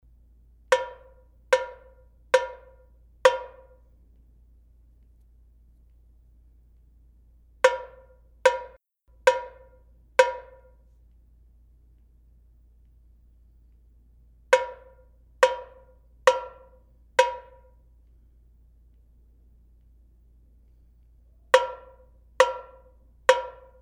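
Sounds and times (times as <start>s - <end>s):
samba tamborim playing a loose rhythm: 0.7s - 3.8s, 7.6s - 10.7s, 14.6s - 17.7s, 21.6s - 23.8s.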